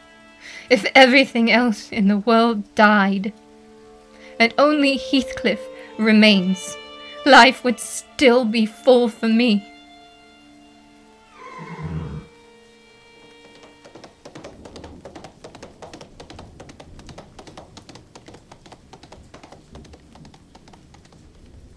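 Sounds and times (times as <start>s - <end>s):
speech: 0.7s - 3.4s, 4.4s - 9.7s
horse giving a loud shrill whinny: 11.3s - 12.4s
horse hoofbeats galloping: 13.1s - 21.7s.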